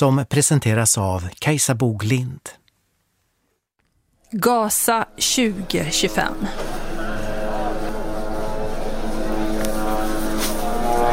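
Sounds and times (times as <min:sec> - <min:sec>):
speech: 0:00.0 - 0:02.6, 0:04.3 - 0:07.1
military drones buzzing overhead: 0:05.1 - 0:11.1.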